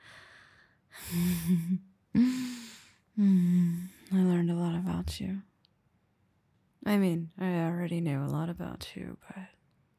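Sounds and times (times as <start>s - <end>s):
person breathing heavily catching their breath: 0.0s - 1.6s, 2.2s - 4.0s
speech: 1.1s - 2.4s, 5.2s - 5.5s, 6.9s - 9.6s.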